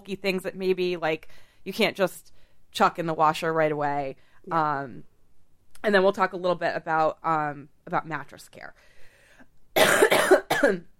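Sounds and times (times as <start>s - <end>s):
speech: 0.0s - 5.1s, 5.8s - 8.9s, 9.8s - 10.9s
harsh croupy barking coughs: 9.8s - 10.9s.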